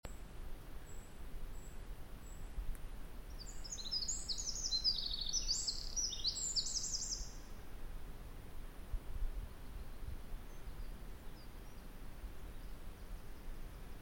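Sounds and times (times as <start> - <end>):
steady low background noise: 0.1 - 14.0
Eurasian wren Troglodytes troglodytes trilling: 3.3 - 7.4.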